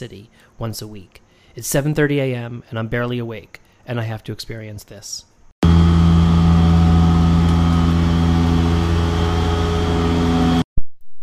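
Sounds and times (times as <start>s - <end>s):
speech: 0.0s - 5.3s
street cleaning truck engine rumbling outside restaurant: 5.6s - 10.6s.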